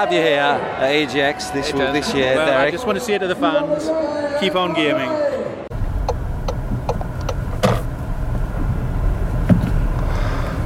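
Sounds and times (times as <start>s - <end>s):
speech: 0.0s - 5.3s
road and engine rumble inside a moving car: 5.7s - 10.6s
regular ticking: 5.8s - 7.6s.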